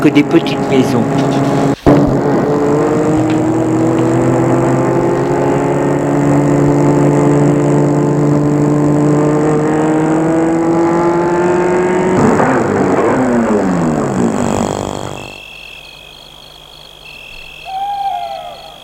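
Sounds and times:
speech: 0.0s - 1.4s
car engine humming as it slows to stop in a countryside street near Versailles: 0.0s - 18.8s
faint outdoor ambience in a countryside street near Versailles, France: 0.0s - 18.8s
brief tonal call: 17.1s - 18.8s.

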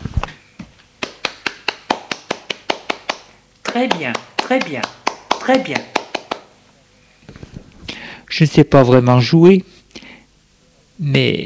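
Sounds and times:
audience applauding in a steady rhythm: 1.0s - 6.6s
speech: 3.7s - 5.9s, 8.4s - 9.7s, 11.0s - 11.4s.

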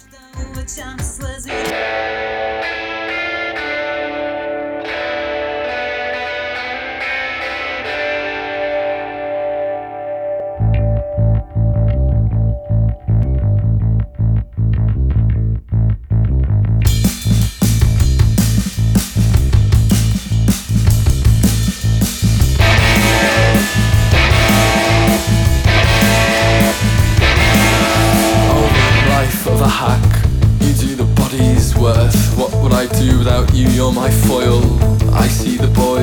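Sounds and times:
heavily distorted effects-laden guitars droning in post-punk music: 1.5s - 36.0s
thick bass: 10.5s - 36.0s
pounding drums: 16.9s - 36.0s.

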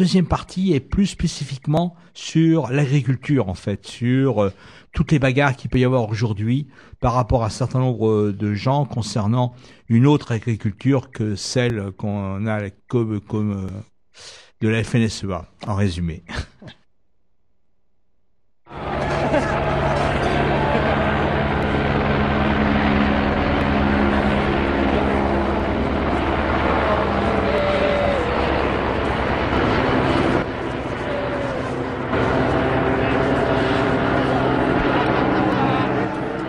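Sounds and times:
speech: 0.0s - 16.8s
laughter: 18.7s - 22.2s, 24.6s - 36.4s
gendarmerie helicopter flying overhead: 18.7s - 36.4s.

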